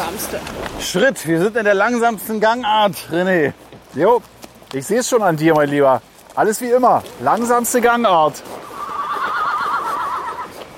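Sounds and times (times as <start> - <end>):
speech: 0.2 - 8.7
horse whinnying in a long wavering neigh: 8.6 - 10.6.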